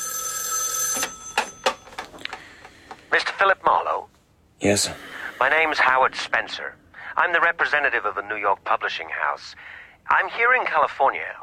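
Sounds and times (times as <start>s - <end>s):
telephone bell ringing: 0.0s - 2.1s
speech: 3.1s - 11.4s.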